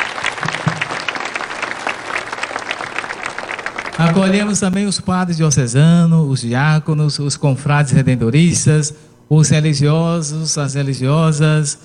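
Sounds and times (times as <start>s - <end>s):
crowd applauding for Catholic bishops: 0.0s - 4.8s
speech: 4.0s - 11.8s.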